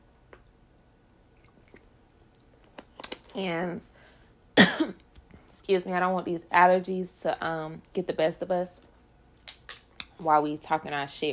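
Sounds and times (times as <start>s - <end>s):
person sipping a drink: 1.3s - 2.5s
speech: 3.4s - 4.0s, 4.6s - 5.0s, 5.7s - 8.9s, 10.2s - 11.3s.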